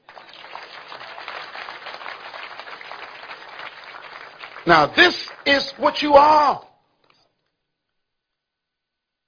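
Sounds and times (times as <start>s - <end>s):
audience applauding: 0.0s - 6.7s
speech: 4.7s - 6.7s.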